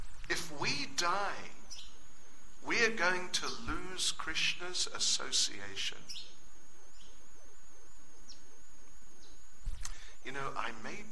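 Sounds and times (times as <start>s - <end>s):
thin constant whine: 0.0s - 11.1s
speech: 0.9s - 1.6s, 2.6s - 6.3s, 10.2s - 11.1s
faint brief higher bird chirps: 1.5s - 2.6s, 6.0s - 10.4s.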